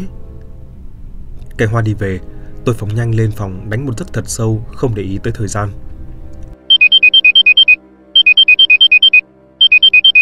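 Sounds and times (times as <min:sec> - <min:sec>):
speech: 0:01.6 - 0:05.8
electronic alarm clock ringing with rapid high alternating beeps: 0:06.7 - 0:10.2.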